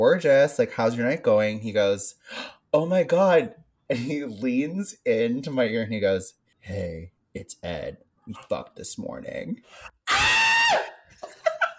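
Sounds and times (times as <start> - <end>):
speech: 0.0 - 10.9
loud high-pitched distorted scream: 10.1 - 11.0.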